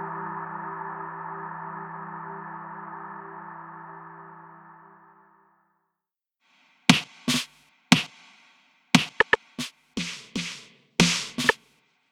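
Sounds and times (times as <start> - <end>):
snare drum loops: 6.9 - 11.7.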